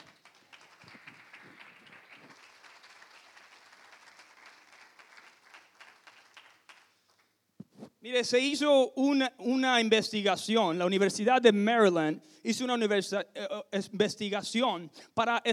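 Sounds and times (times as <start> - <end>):
crowd applauding: 0.0 - 7.3
louder isolated claps: 0.0 - 7.3
speech: 8.0 - 15.5.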